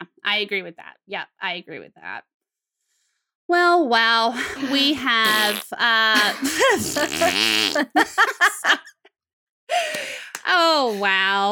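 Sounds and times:
speech: 0.3 - 2.3, 3.5 - 9.0, 9.7 - 11.4
fart noise: 5.2 - 5.7, 6.6 - 8.0
laughter-like bursts: 6.2 - 9.1.

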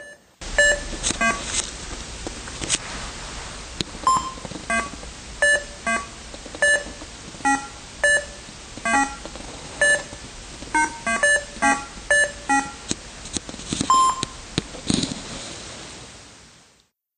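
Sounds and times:
Atari Breakout video game beeps: 0.0 - 1.5, 4.1 - 9.2, 9.8 - 12.8, 13.9 - 14.4
faint steady hiss: 0.0 - 16.9.

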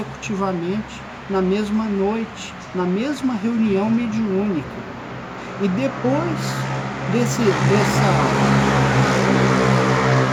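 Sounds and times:
speech: 0.0 - 4.9, 5.6 - 8.8
loud motorcycle engine roaring: 3.7 - 10.3.

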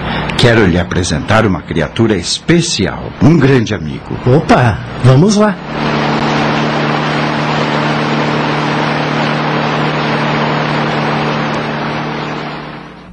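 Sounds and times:
speech: 0.4 - 6.0
car engine humming as the car slows and stops: 4.1 - 13.1.

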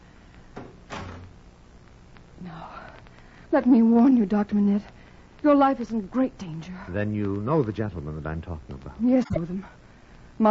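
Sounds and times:
doors being shut: 0.6 - 1.4
speech: 2.4 - 2.9, 3.5 - 9.8.

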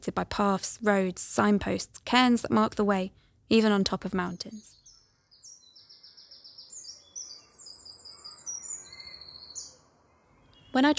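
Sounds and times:
speech: 0.0 - 4.8, 10.8 - 10.9
flock of birds chattering outside: 4.2 - 10.9.

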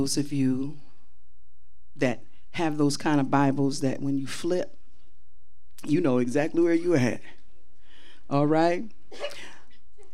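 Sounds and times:
speech: 0.0 - 0.8, 2.0 - 4.8, 5.8 - 7.4, 8.3 - 9.4
person in the audience sneezing: 9.2 - 9.6.

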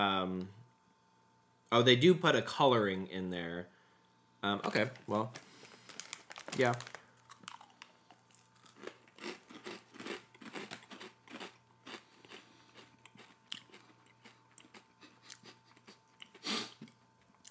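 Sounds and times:
speech: 1.7 - 3.7, 4.4 - 5.5, 6.6 - 6.9
chewing crunchy cheese crisps: 5.3 - 17.4.

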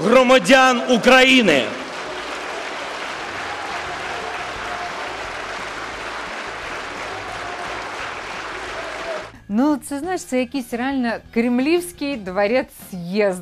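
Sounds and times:
large audience applause in a hall: 0.0 - 9.3
speech: 0.1 - 1.8, 9.5 - 13.4.

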